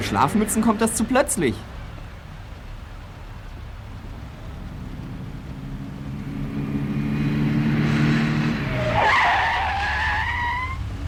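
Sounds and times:
car tires screeching under hard braking at a traffic light: 0.0s - 11.0s
low car engine rumble: 0.0s - 11.0s
speech: 0.1s - 1.8s.

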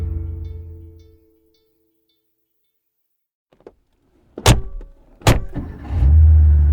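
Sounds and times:
sports car engine rumbling back to life: 3.5s - 6.6s
heavy sports car door thuds: 4.4s - 5.7s.

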